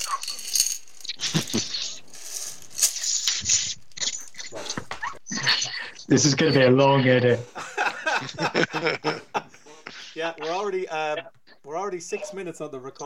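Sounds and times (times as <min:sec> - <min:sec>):
coins rattling and clinking inside a glass bottle of change: 0:00.0 - 0:04.4
laughter: 0:01.2 - 0:01.9, 0:07.4 - 0:10.2
speech: 0:01.3 - 0:01.7, 0:06.1 - 0:07.6, 0:08.2 - 0:09.2, 0:10.2 - 0:13.0.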